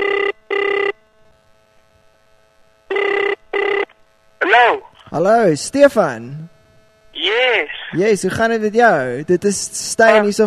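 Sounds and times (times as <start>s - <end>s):
telephone ringing on an outgoing call: 0.0s - 1.0s, 2.9s - 3.9s
quiet telephone line hum: 0.0s - 10.4s
speech: 5.2s - 6.5s, 7.4s - 10.4s.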